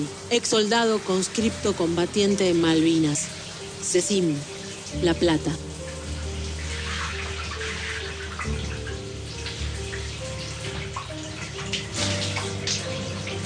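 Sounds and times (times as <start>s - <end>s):
speech: 0.0s - 5.7s
shower water spraying and splashing: 0.0s - 13.4s.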